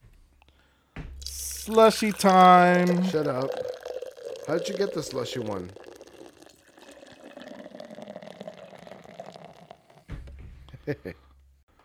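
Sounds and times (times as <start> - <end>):
7.1% ABV beer pouring into a glass: 1.2 - 10.1
speech: 1.6 - 3.8, 4.5 - 5.9, 10.9 - 11.2.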